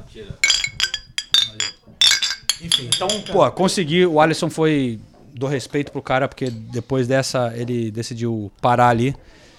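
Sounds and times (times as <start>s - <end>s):
speech: 0.1s - 0.5s, 2.6s - 9.5s
glasses clinking in a toast: 0.4s - 3.6s.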